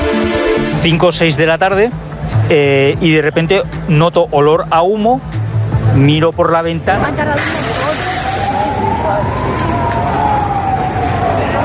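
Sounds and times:
street and traffic noise: 0.0 - 11.6
speech: 0.8 - 5.3, 6.0 - 7.7
emergency vehicle siren wailing: 7.6 - 11.6.

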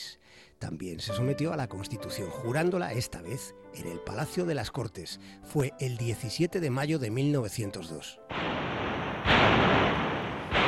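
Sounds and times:
speech: 0.6 - 8.5
heavy cannon salute fire of a 21-gun salute: 8.3 - 10.6.

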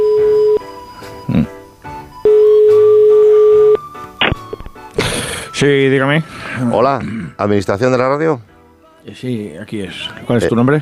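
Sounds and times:
telephone ringing tones of an incoming call to a radio phone-in: 0.0 - 1.0, 2.2 - 3.9
speech: 5.6 - 10.8.

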